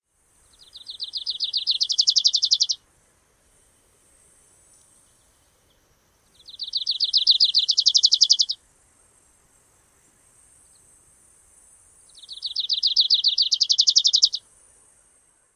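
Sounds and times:
Grace's Warbler singing: 0.4 - 2.8, 4.8 - 8.6, 12.0 - 14.4.

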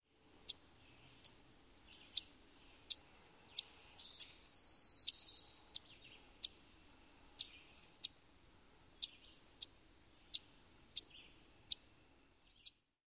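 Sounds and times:
Eastern Wood-Pewee calls: 0.5 - 6.6, 7.3 - 8.2, 9.0 - 11.9, 12.5 - 12.9.

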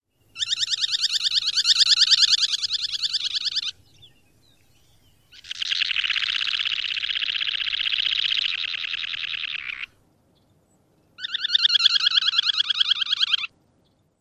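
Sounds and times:
semipalmated sandpiper calls: 0.4 - 3.9, 5.3 - 10.0, 11.2 - 13.5.

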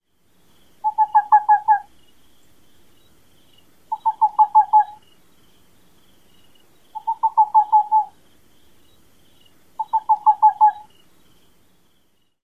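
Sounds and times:
Whiskered Screech-Owl tooting: 0.8 - 1.9, 3.9 - 5.0, 7.0 - 8.2, 9.8 - 10.9.

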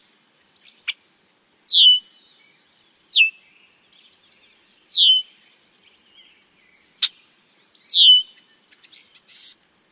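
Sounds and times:
male bird burry whistles: 1.7 - 2.2, 7.9 - 8.3.

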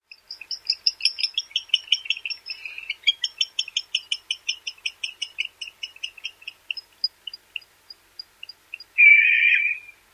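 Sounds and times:
barn owl tinkling calls: 0.1 - 7.7, 8.4 - 10.0.

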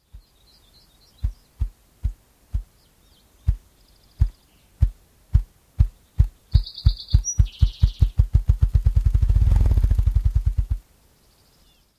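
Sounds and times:
Ruffed Grouse drumming: 4.2 - 10.8.

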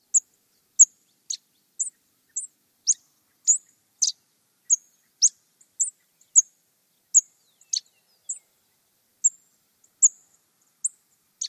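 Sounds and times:
series of calls: 0.0 - 8.5, 10.0 - 11.4.

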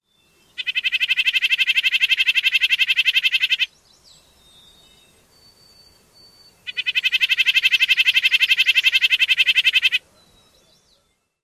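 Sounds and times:
rapid call series: 0.6 - 3.7, 6.7 - 10.0.

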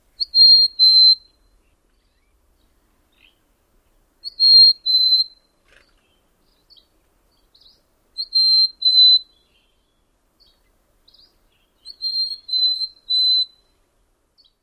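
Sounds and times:
bird singing songs: 0.1 - 3.5, 4.2 - 13.8, 14.4 - 14.6.

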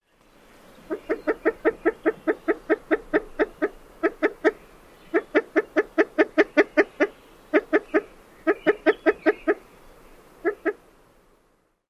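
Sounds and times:
female alarm calls: 0.8 - 9.6, 10.4 - 10.8.

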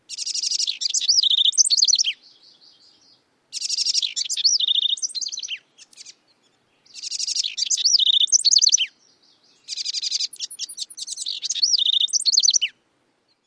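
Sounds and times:
house wren singing: 0.1 - 12.7.

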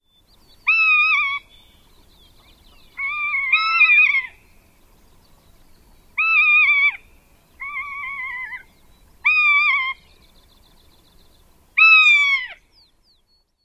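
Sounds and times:
rough-legged hawk calling: 3.0 - 4.4, 6.2 - 10.0, 11.8 - 12.6.

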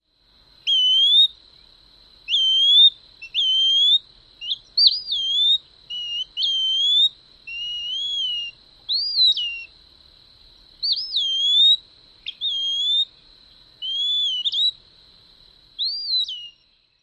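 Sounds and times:
purree calls: 0.7 - 1.7, 2.3 - 9.7, 10.8 - 14.8, 15.8 - 17.0.

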